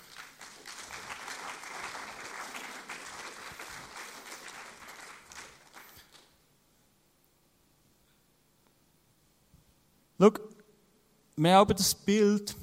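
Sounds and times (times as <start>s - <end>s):
audience applause: 0.0s - 6.3s
speech: 10.2s - 10.5s, 11.4s - 12.6s.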